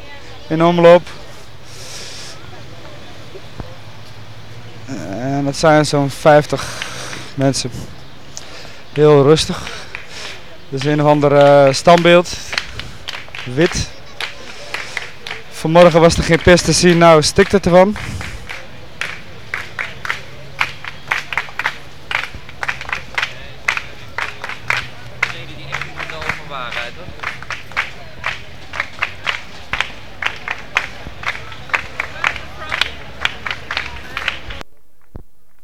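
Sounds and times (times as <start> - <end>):
overlapping crowd chatter on a busy pedestrian boulevard: 0.0 - 34.7
speech: 0.5 - 1.2, 5.5 - 6.8, 7.4 - 8.0, 9.0 - 9.8, 10.7 - 12.5, 13.5 - 13.9, 15.6 - 18.2
scattered sharp clicks or claps: 8.3 - 15.4, 16.2 - 35.2.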